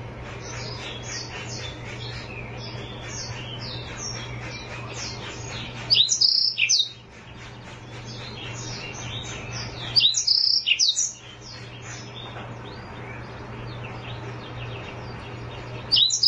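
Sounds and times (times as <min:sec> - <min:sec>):
steady low hum: 0:00.0 - 0:16.2
Oriental magpie-robin singing quick high chirps and whistles: 0:05.2 - 0:07.0, 0:09.3 - 0:11.2, 0:15.9 - 0:16.2.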